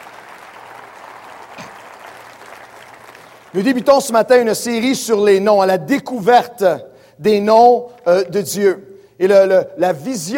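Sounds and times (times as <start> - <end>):
church congregation applauding: 0.0 - 4.8
speech: 3.5 - 10.3.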